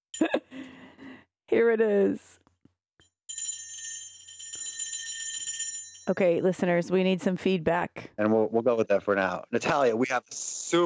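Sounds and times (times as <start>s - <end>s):
speech: 1.5s - 2.4s, 6.1s - 10.8s
bright high-pitched bell ringing: 3.3s - 6.4s.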